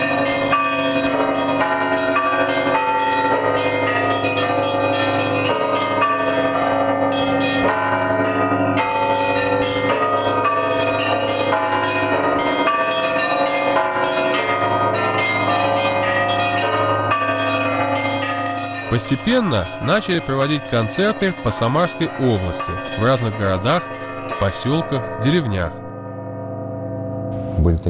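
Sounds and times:
church bells rung by bell ringers in a church belfry in the Samara region of Russia: 0.0s - 27.8s
speech: 19.1s - 25.8s, 27.6s - 27.8s.

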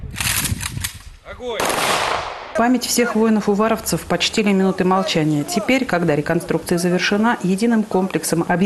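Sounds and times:
ceremonial rifle salute volleys of gunfire echoing across an open space: 0.1s - 2.5s
speech: 1.4s - 8.6s.

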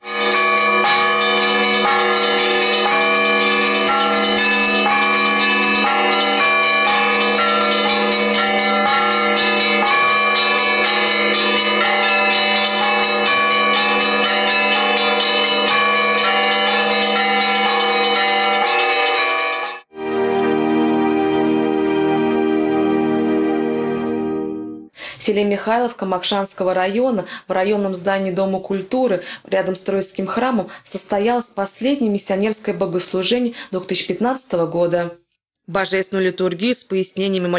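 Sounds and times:
church bells pealing: 0.0s - 24.3s
speech: 25.4s - 37.5s.

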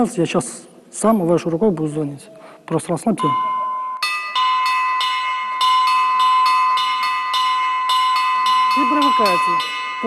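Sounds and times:
speech: 0.0s - 3.6s, 9.2s - 10.0s
church bells struck by a bell-ringer: 3.2s - 10.0s.

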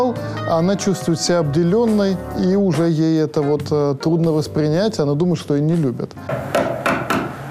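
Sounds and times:
speech: 0.0s - 6.6s
hammer pounding on wood: 6.3s - 7.4s.

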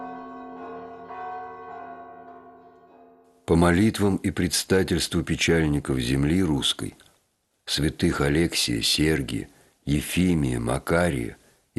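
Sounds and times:
church bells ringing: 0.0s - 3.3s
speech: 3.5s - 7.1s, 7.7s - 11.7s.

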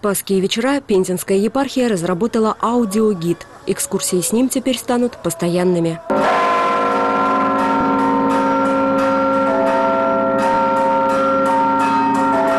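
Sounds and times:
speech: 0.0s - 6.4s
large church bells of a cathedral ringing in a peal: 5.2s - 12.5s
small church bells of a cathedral ringing in a peal: 6.1s - 12.5s.

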